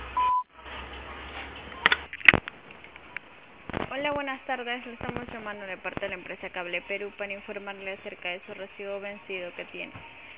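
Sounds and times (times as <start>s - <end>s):
voicemail beep over a phone line: 0.2s - 0.5s
speech: 4.0s - 10.2s.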